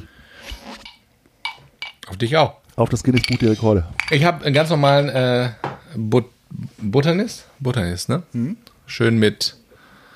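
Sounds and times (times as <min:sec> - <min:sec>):
glasses clinking in a toast: 0:00.8 - 0:02.0, 0:03.2 - 0:04.3
speech: 0:02.2 - 0:09.6.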